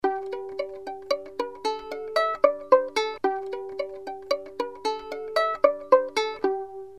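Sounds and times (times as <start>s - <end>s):
pizzicato strings: 0.0s - 6.9s.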